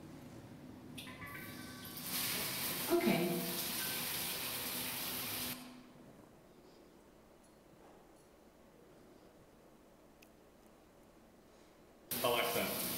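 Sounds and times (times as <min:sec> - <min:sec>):
water spraying from a lab bathroom shower: 0:01.3 - 0:05.7, 0:12.1 - 0:12.9.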